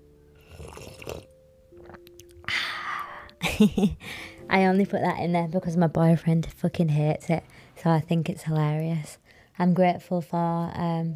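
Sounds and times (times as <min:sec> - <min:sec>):
person sipping from a cup of tea: 0:00.4 - 0:02.5
speech: 0:03.6 - 0:11.1.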